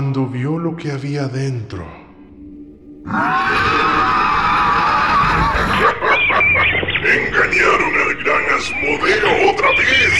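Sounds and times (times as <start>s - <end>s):
speech: 0.0s - 2.0s, 3.0s - 3.8s, 5.8s - 10.1s
dogs barking and growling: 3.1s - 8.0s
laughter: 3.6s - 10.1s.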